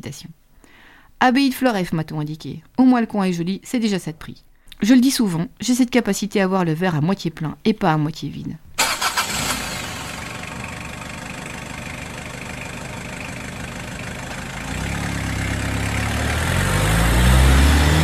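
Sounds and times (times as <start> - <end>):
speech: 0.0 - 0.4, 1.2 - 8.6
car engine cranking, idling and revving as it pulls away: 8.8 - 18.0.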